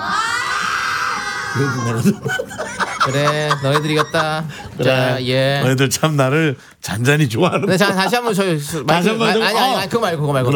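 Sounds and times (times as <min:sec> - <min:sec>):
studio audience screaming and shouting on request: 0:00.0 - 0:02.1
laughter: 0:00.0 - 0:05.4
speech: 0:01.6 - 0:10.5.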